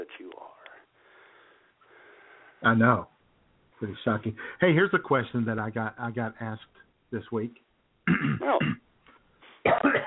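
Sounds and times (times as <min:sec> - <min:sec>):
speech: 0:02.6 - 0:03.1, 0:03.8 - 0:08.8
rough forceful coughs: 0:08.1 - 0:08.8, 0:09.6 - 0:10.0
throat clearing: 0:08.1 - 0:08.8, 0:09.6 - 0:10.0.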